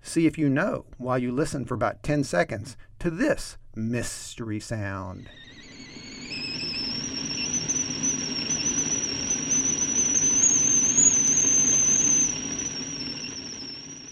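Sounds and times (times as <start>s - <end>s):
speech: 0.1s - 5.5s
thin high whistling tone: 4.8s - 14.1s
water boiling on a stove: 5.4s - 14.1s.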